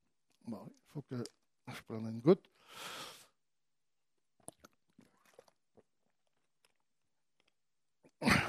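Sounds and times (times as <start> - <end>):
speech: 0.5 - 3.0
wet crunching and chewing clicks: 4.4 - 8.2.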